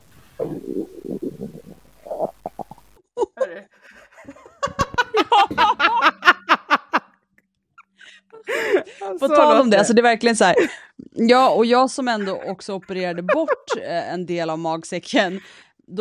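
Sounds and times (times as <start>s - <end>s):
stomach gurgling and rumbling: 0.0s - 3.0s
speech: 0.4s - 2.2s, 9.1s - 15.9s
laughter: 3.2s - 7.1s, 8.4s - 9.4s, 12.0s - 14.0s.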